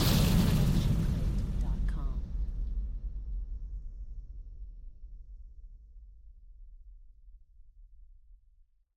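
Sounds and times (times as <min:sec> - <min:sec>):
magic explosion: 0:00.0 - 0:02.4.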